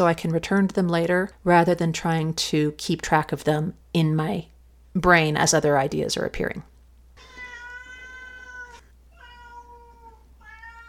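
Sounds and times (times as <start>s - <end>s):
speech: 0.0s - 6.7s
cat meowing: 7.2s - 10.8s.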